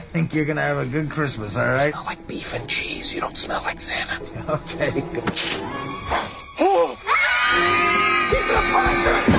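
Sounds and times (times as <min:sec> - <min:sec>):
steady droning tone: 0:00.0 - 0:06.0
speech: 0:00.2 - 0:06.2
children shrieking in panic: 0:05.7 - 0:09.2.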